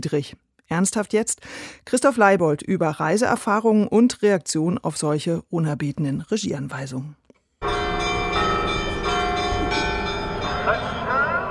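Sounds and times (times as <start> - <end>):
speech: 0.0 - 7.2
church bells ringing in Jerusalem's Old City: 7.6 - 11.4.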